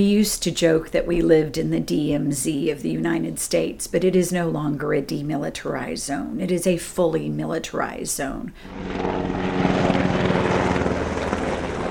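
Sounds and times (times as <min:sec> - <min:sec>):
speech: 0:00.0 - 0:10.0
helicopter rotor chop and engine drone passing overhead: 0:08.6 - 0:11.8.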